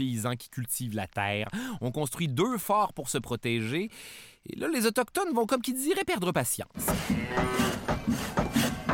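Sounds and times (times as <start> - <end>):
speech: 0.0 - 8.7
cows mooing in a dense overlapping chorus: 6.9 - 8.5.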